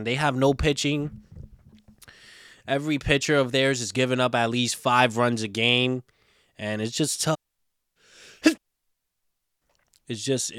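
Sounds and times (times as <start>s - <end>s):
speech: 0.0s - 1.2s, 2.7s - 7.4s, 10.1s - 10.5s
person sneezing: 8.3s - 8.6s.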